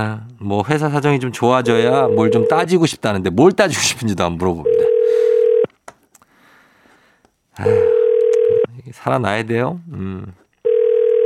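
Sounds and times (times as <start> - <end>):
speech: 0.0 - 5.3, 7.6 - 7.9, 8.8 - 10.4
loud steady telephone ringing tone: 1.6 - 2.8, 4.6 - 5.7, 7.6 - 8.7, 10.6 - 11.2.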